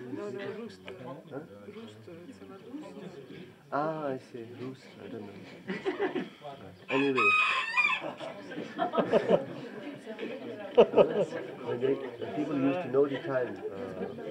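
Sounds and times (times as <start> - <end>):
speech: 0.3 - 14.2
laughter: 5.4 - 14.2
rooster crowing: 6.9 - 8.2.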